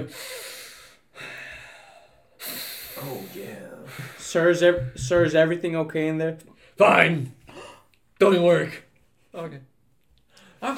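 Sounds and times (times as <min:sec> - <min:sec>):
speech: 0:00.0 - 0:00.4, 0:03.0 - 0:07.4, 0:08.2 - 0:09.7, 0:10.6 - 0:10.7
exaggerated heavy panting breaths: 0:00.0 - 0:05.2.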